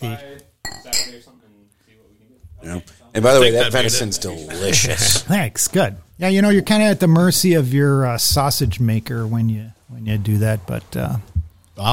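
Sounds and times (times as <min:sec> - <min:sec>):
glasses clinking in a toast: 0:00.6 - 0:01.3
speech: 0:02.6 - 0:11.9.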